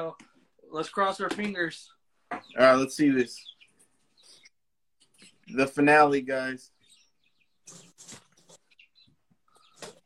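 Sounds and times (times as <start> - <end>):
speech: 0.0 - 3.6, 5.5 - 6.7
birds chirping: 0.0 - 10.0
rustling: 7.7 - 8.8.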